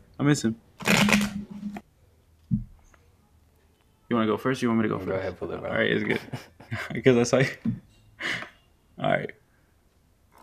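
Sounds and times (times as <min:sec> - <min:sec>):
speech: 0:00.2 - 0:01.5, 0:04.2 - 0:08.4
riffle of playing cards being shuffled: 0:00.8 - 0:01.8.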